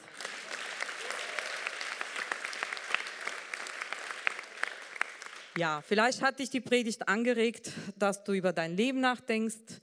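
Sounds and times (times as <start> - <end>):
audience applauding: 0.0 - 5.6
speech: 5.6 - 9.8.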